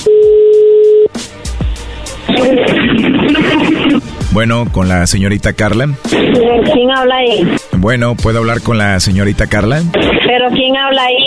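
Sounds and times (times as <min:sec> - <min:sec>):
telephone dial tone: 0:00.0 - 0:01.1
laughter: 0:02.3 - 0:04.1
speech: 0:04.4 - 0:11.2.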